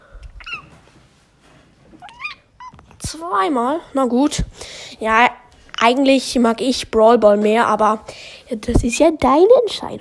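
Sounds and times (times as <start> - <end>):
cat meowing: 2.0 - 2.9
speech: 3.1 - 10.0.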